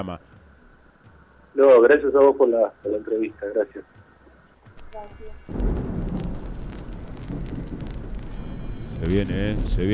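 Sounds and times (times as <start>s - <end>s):
speech: 0.0s - 0.3s, 1.6s - 4.0s, 4.9s - 5.7s, 9.0s - 9.9s
heavy rain downpour: 4.9s - 9.9s
thunder rumbling: 4.9s - 9.9s.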